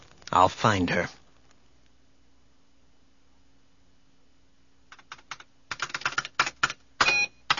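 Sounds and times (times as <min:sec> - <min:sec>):
speech: 0:00.3 - 0:01.2
typing commands on a keyboard: 0:04.9 - 0:07.5.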